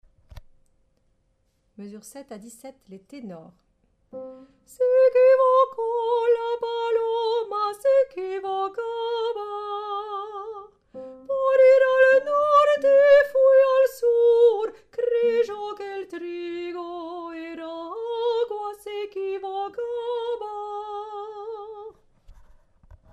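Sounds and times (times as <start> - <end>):
tenor singing: 4.2 - 22.0.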